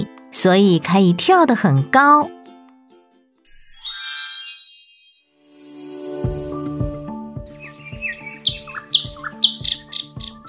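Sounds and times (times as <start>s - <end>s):
speech: 0.0s - 2.4s
soft steady musical background with a regular low pulse: 5.6s - 10.4s
small birds chirping in quick bright bursts: 7.4s - 10.4s.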